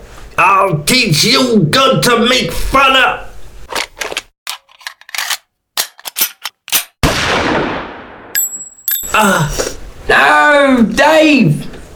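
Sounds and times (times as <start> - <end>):
speech: 0.4 - 3.3, 9.2 - 11.7
gunshot: 7.0 - 8.4.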